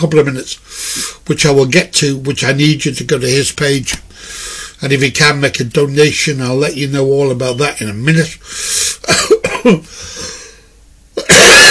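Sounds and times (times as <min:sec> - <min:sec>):
speech: 0:00.0 - 0:10.1
person coughing harshly: 0:09.0 - 0:10.4, 0:11.2 - 0:11.7.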